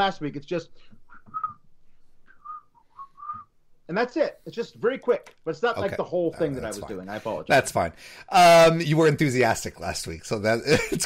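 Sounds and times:
speech: 0.0 - 1.4, 3.9 - 11.0
person whistling a catchy song's tune: 1.1 - 1.6, 2.3 - 3.5.

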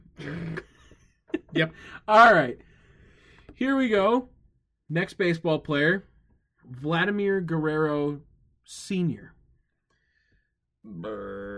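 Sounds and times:
loud drawn-out gravelly burp: 0.2 - 0.6, 10.9 - 11.5
speech: 1.6 - 2.7, 3.5 - 4.3, 4.9 - 6.1, 6.7 - 9.4, 10.8 - 11.5.

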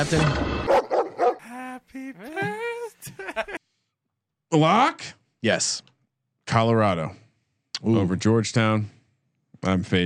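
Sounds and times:
speech: 0.0 - 0.8, 3.1 - 3.6, 4.5 - 5.9, 6.5 - 7.2, 7.8 - 9.0, 9.6 - 10.0
dog barking and yelping: 0.6 - 1.4
laughter: 1.4 - 3.6.

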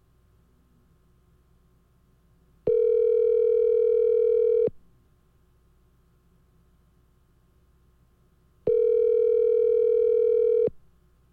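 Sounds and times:
telephone ringback tone: 2.7 - 4.7, 8.7 - 10.7.

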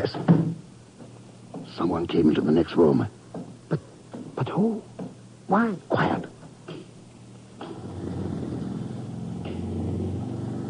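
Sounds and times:
speech: 0.0 - 0.3, 1.8 - 4.9, 5.5 - 6.3
generator warming up engine drone: 7.6 - 10.6.

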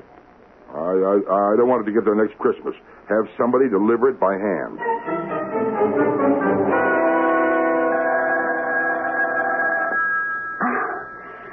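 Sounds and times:
speech: 1.0 - 5.2
telephone ringing at night: 4.8 - 11.5.

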